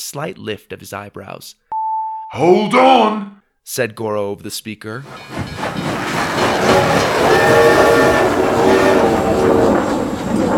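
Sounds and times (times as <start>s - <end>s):
speech: 0.1s - 1.7s, 2.3s - 10.0s
sustained horn-like tone: 1.7s - 3.2s
space train blasting off roaring: 5.1s - 10.5s.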